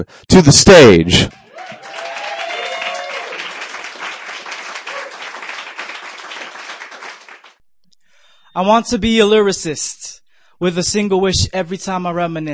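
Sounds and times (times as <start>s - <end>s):
speech: 0.0s - 1.4s, 8.6s - 12.5s
people cheering and whooping: 1.3s - 6.3s
audience applauding at a poetry performance night: 1.3s - 7.6s.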